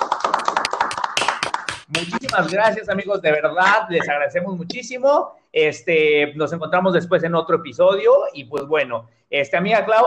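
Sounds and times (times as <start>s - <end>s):
hands clapping: 0.0s - 3.0s
speech: 2.0s - 10.0s.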